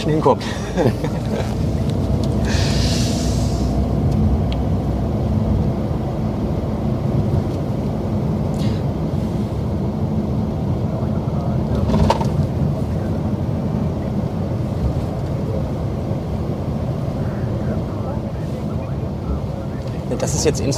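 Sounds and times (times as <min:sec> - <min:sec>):
speech: 0:00.0 - 0:01.7, 0:20.3 - 0:20.7
vehicle driving along an airport taxiway: 0:00.0 - 0:20.7
laughter: 0:00.4 - 0:01.9
airy hiss: 0:02.4 - 0:03.8.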